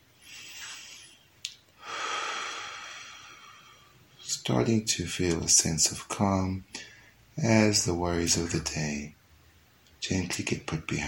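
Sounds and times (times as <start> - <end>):
deep belly breathing while settling into meditation: 0.2 - 4.1
speech: 4.5 - 6.7, 7.4 - 9.2, 10.0 - 11.0.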